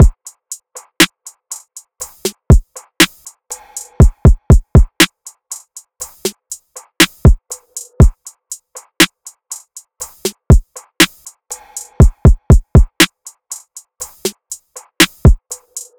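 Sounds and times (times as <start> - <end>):
bright drum loop: 0.0 - 15.9.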